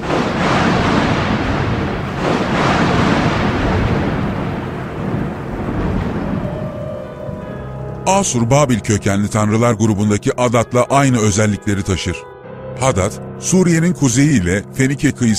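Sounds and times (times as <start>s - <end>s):
stormy wash of wind-like noise: 0.0s - 7.6s
thunder rumbling in a storm: 0.0s - 9.5s
speech: 8.1s - 15.3s.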